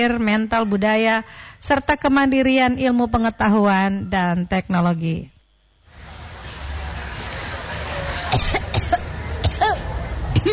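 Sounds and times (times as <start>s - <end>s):
speech: 0.0s - 5.3s
low noise: 0.0s - 10.5s
sharp coughs: 8.4s - 10.5s.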